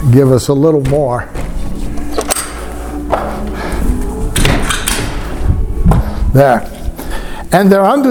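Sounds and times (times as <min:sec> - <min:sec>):
speech: 0:00.1 - 0:01.4, 0:06.4 - 0:06.8, 0:07.5 - 0:08.0
doors being closed with dull thuds and clunks: 0:00.8 - 0:03.3, 0:04.3 - 0:06.1.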